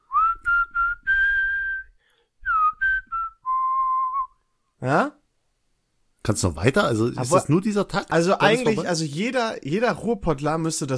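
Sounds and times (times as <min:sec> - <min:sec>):
person whistling a short melody: 0:00.0 - 0:04.4
speech: 0:04.8 - 0:05.2, 0:06.3 - 0:10.9.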